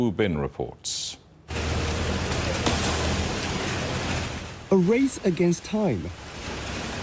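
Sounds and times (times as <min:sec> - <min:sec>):
speech: 0:00.0 - 0:01.2, 0:04.7 - 0:06.2
heavy rain from a typhoon in Yuhuan East China: 0:01.4 - 0:07.0.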